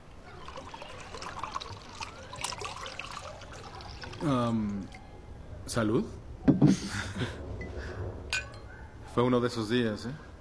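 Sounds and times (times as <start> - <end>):
wine being poured at home: 0.2 - 5.0
speech: 4.2 - 5.0, 5.7 - 7.5, 9.2 - 10.3
laughter: 6.5 - 7.4.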